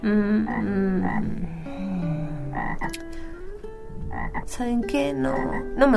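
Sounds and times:
speech: 0:00.0 - 0:02.0, 0:02.6 - 0:03.2, 0:04.3 - 0:05.9
toad croaking: 0:00.4 - 0:01.6, 0:02.4 - 0:03.1, 0:03.9 - 0:04.6, 0:05.3 - 0:05.9.

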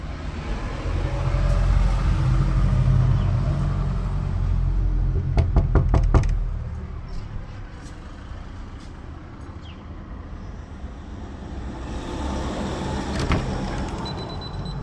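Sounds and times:
low rumble of traffic or an idling engine: 0:00.0 - 0:14.8
sharp knocking on a door: 0:05.2 - 0:06.4.

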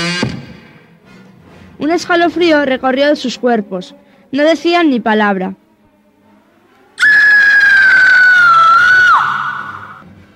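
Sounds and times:
speech: 0:01.8 - 0:05.6
loud high-pitched scream: 0:07.0 - 0:10.0.

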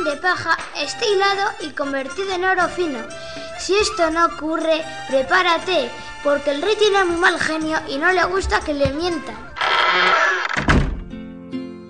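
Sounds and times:
speech: 0:00.0 - 0:10.2
tower door closing with a heavy low thud: 0:10.4 - 0:11.2.

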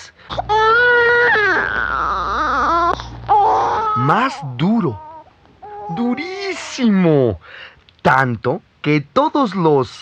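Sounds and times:
baby wailing loudly in high-pitched cries: 0:00.3 - 0:07.0
speech: 0:04.0 - 0:05.1, 0:05.9 - 0:09.9.

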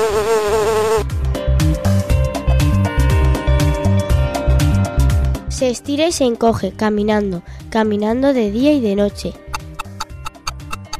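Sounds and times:
bee buzzing: 0:00.0 - 0:01.1
bouncy rhythmic music track with thumping bass line: 0:01.1 - 0:10.9
speech: 0:05.7 - 0:09.4.

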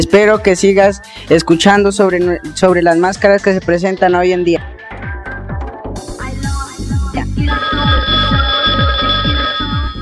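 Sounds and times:
speech: 0:00.0 - 0:04.7
steady pulsing low beat: 0:06.5 - 0:10.0
telephone ringing with an incoming call: 0:07.4 - 0:10.0.

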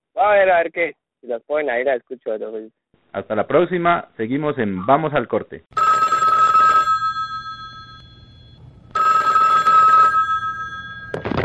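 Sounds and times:
speech: 0:00.2 - 0:05.8
telephone ringing with an incoming call: 0:05.8 - 0:11.4
faint hum: 0:07.2 - 0:11.4.

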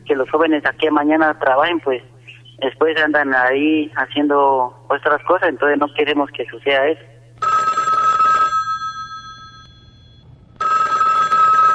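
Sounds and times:
speech: 0:00.1 - 0:07.1
telephone ringing with bright electronic trilling: 0:07.4 - 0:11.7.

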